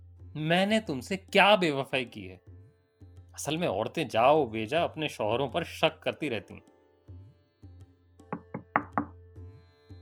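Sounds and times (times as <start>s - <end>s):
speech: 0.4s - 2.6s, 3.4s - 6.7s
soft thuds: 8.4s - 9.1s
sharp knocks on a door: 8.4s - 9.2s.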